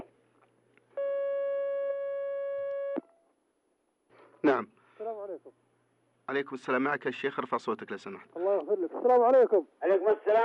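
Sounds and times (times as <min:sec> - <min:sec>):
telephone line tone of an incoming call on a call-in line: 0:01.0 - 0:03.0
speech: 0:04.4 - 0:05.7, 0:06.3 - 0:10.4.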